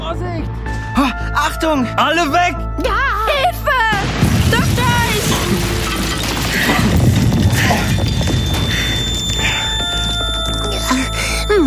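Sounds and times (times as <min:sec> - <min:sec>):
speech: 0:00.4 - 0:03.9
loud crashing roar with heavy low rumble: 0:04.0 - 0:08.6
scattered debris clatter: 0:04.0 - 0:10.7
ringing tones: 0:05.2 - 0:11.6.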